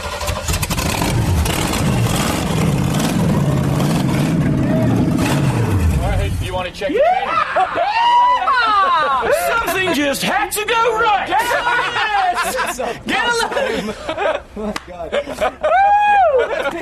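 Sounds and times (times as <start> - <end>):
engine starting and revving: 0.0 - 6.6
excited people shouting and cheering: 4.4 - 13.8, 15.6 - 16.7
speech: 6.8 - 7.8, 10.1 - 15.9
laughter: 6.9 - 10.3, 11.3 - 16.7.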